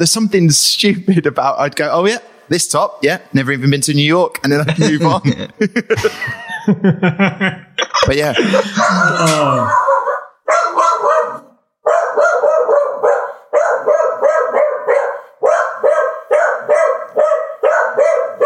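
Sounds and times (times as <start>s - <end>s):
speech: 0.0s - 9.9s
laughter: 4.5s - 10.0s
dog barking frantically at a delivery arriving: 8.5s - 18.4s.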